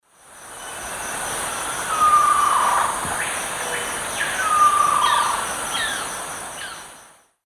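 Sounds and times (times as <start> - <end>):
Grallaria dignissima call: 1.9 - 6.8.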